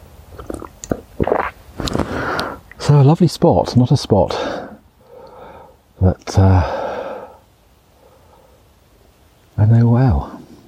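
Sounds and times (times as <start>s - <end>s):
person sipping tea with a slurp and swallow: 0.3s - 2.8s
speech: 2.9s - 4.6s, 6.0s - 6.8s, 9.6s - 10.3s.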